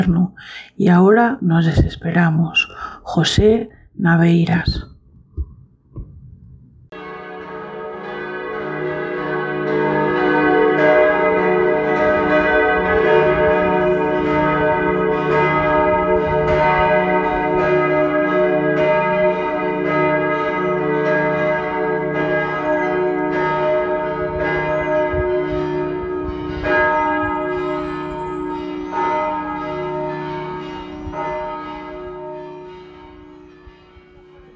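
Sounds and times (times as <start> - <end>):
speech: 0.0 - 4.9
copper and tin church bells pealing: 6.9 - 34.5.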